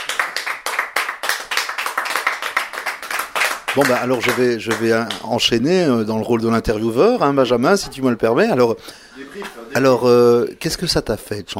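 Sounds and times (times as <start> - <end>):
audience clapping after a song performance: 0.0 - 5.5
speech: 3.7 - 11.5.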